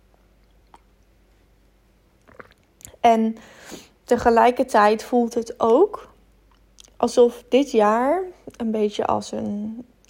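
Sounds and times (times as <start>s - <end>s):
person sipping and swallowing tea: 2.2s - 3.0s
speech: 3.0s - 6.1s, 7.0s - 9.9s.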